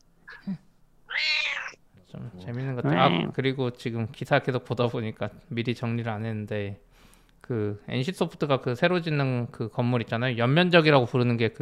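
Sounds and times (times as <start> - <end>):
speech: 0.4 - 0.6, 2.4 - 6.9, 7.5 - 11.6
cat meowing: 1.1 - 1.8.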